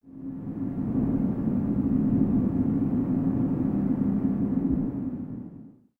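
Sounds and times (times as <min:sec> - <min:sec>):
wind in a cave: 0:00.1 - 0:05.9.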